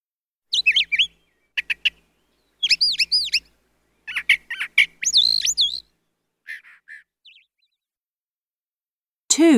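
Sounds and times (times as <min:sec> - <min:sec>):
bird chirping and warbling: 0:00.5 - 0:07.9
speech: 0:09.4 - 0:09.5.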